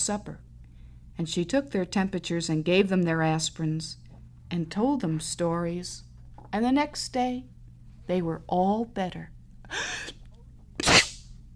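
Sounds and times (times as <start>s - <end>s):
speech: 0.0s - 0.5s, 1.2s - 7.5s, 8.1s - 10.2s
person sneezing: 9.7s - 10.2s, 10.8s - 11.3s.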